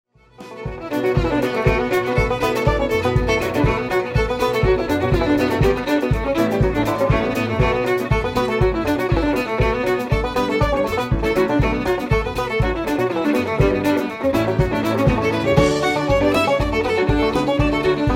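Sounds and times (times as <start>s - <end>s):
banjo: 0.2s - 18.1s.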